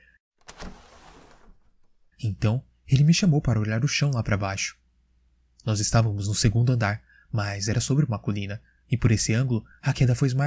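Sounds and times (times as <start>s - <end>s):
window being wrenched open with a scraping slide: 0.4s - 2.1s
speech: 2.2s - 4.8s, 5.6s - 10.4s.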